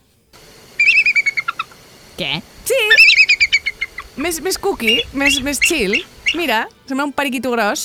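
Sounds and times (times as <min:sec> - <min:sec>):
eagle's high rapid chirping cry: 0:00.4 - 0:06.6
speech: 0:02.2 - 0:03.1, 0:04.2 - 0:07.8.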